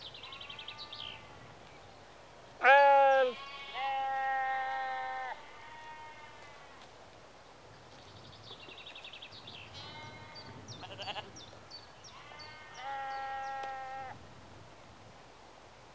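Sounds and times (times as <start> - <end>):
sheep bleating in a rural exterior atmosphere in early evening: 2.6 - 6.5, 12.2 - 14.1.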